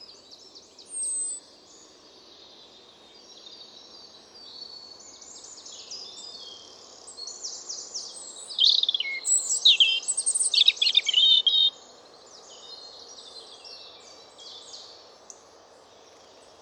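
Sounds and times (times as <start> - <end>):
European robin singing: 0.8 - 1.4, 7.2 - 11.7.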